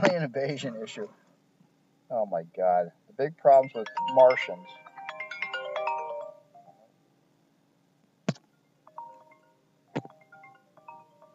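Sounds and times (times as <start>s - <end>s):
speech: 0.0s - 1.3s, 2.1s - 4.8s
quieter tonal chimes: 3.5s - 6.9s, 8.9s - 11.3s
phone ringtone melody: 3.6s - 6.8s, 8.9s - 11.3s.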